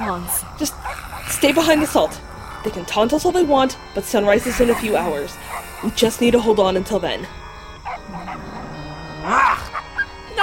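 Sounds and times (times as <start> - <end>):
lion dogs yelping in pain while being beaten: 0.0 - 3.4, 4.3 - 6.4, 7.8 - 10.2
speech: 0.1 - 7.4.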